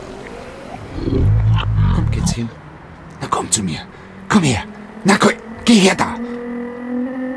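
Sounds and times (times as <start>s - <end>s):
lion growling while walking toward a man: 0.8s - 2.5s
speech: 2.4s - 2.6s, 3.4s - 6.4s.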